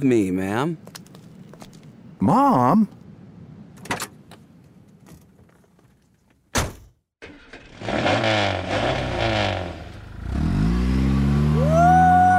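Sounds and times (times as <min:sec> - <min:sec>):
speech: 0:00.0 - 0:01.0, 0:02.2 - 0:03.0
car door thudding shut: 0:06.5 - 0:06.9
red sports car engine roaring and revving as the car accelerates away: 0:07.2 - 0:12.0.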